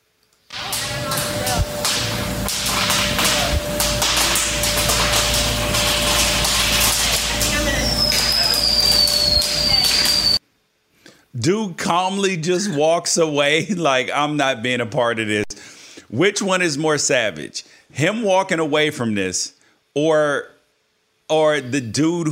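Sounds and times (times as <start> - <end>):
fireworks cracking and popping inside a grocery store: 0.5 - 10.4
speech: 11.4 - 15.5, 16.1 - 20.5, 21.3 - 22.2.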